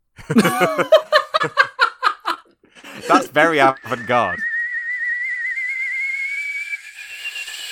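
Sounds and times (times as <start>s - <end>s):
laughter: 0.2s - 4.2s
speech: 0.3s - 1.7s, 3.1s - 4.5s
person imitating a boiling kettle whistle: 3.0s - 7.6s.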